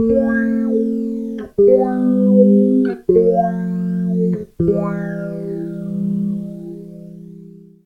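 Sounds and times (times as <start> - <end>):
guitar chords: 0.0 - 7.8.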